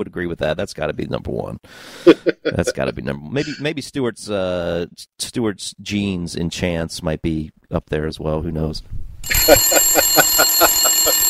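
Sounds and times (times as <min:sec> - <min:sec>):
speech: 0:00.0 - 0:11.2
laughter: 0:02.0 - 0:03.6, 0:09.3 - 0:11.2
bell ringing rapidly like an alarm bell: 0:09.2 - 0:11.2.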